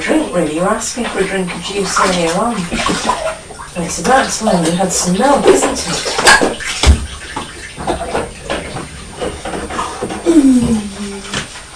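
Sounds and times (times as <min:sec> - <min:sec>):
water running from a tap while rinsing a child's drinking beaker at home: 0:00.3 - 0:11.6
speech: 0:00.4 - 0:06.8.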